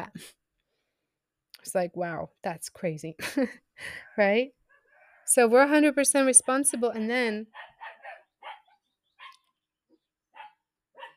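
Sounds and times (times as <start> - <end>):
speech: 0.1 - 0.4, 1.6 - 4.6, 5.3 - 7.7
puppies barking: 7.5 - 9.5, 10.3 - 11.1.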